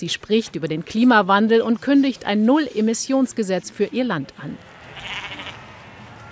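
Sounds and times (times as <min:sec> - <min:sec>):
speech: 0:00.0 - 0:05.3
sheep bleating in the mountainous southwest of New Zealand: 0:04.6 - 0:06.2.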